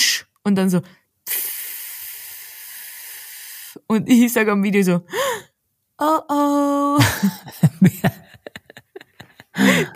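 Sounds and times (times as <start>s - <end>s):
speech: 0.4s - 1.0s, 3.9s - 5.2s, 6.0s - 8.2s
voice imitating air hissing from a slashed car tire: 1.2s - 3.9s
laughter: 7.0s - 9.9s.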